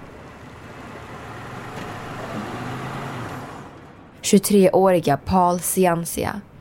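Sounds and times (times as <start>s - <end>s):
car idling outside airport terminal: 0.0s - 4.2s
steady traffic noise outside airport terminal: 0.0s - 6.5s
speech: 4.2s - 6.5s.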